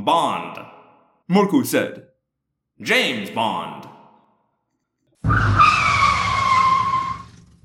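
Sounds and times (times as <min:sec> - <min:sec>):
speech: 0:00.0 - 0:00.7, 0:01.3 - 0:02.1, 0:02.8 - 0:03.9
truck tires skidding to a stop: 0:05.2 - 0:07.6.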